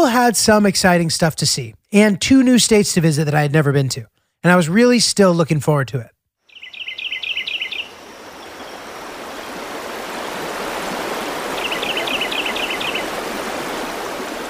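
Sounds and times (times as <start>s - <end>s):
speech: 0.2s - 6.2s
birds chirping beside a flowing river: 6.5s - 14.4s
steady rush of a flowing river: 7.2s - 14.4s.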